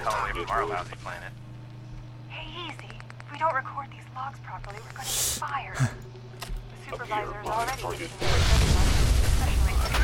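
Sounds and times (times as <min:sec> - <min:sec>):
low steady hum: 0:00.0 - 0:10.0
speech: 0:00.3 - 0:01.5, 0:02.4 - 0:06.2, 0:06.9 - 0:10.0
loud fiery explosion with crackling roar and deep rumble: 0:08.2 - 0:10.0.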